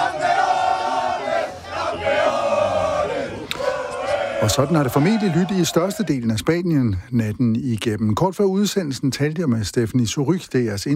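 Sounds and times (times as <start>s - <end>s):
large crowd cheering a football World Cup final win: 0.0s - 6.2s
speech: 4.4s - 10.9s.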